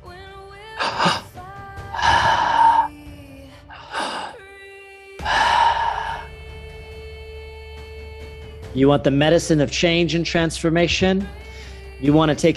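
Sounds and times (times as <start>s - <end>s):
deep breaths during a guided breathwork session: 0.8s - 1.3s, 1.9s - 4.4s, 5.2s - 6.4s, 11.4s - 11.9s
speech: 8.8s - 11.4s, 12.0s - 12.5s.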